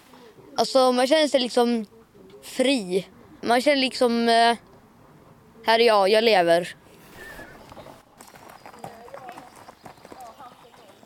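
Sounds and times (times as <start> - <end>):
speech: 0.6 - 4.7, 5.6 - 6.8
birds chirping: 5.9 - 11.0
ridden Icelandic horse hooves clip-clopping: 7.5 - 11.0.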